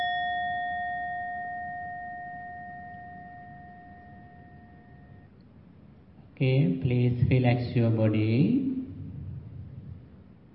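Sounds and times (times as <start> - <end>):
meditation bell ringing: 0.0 - 5.4
speech: 6.4 - 8.8.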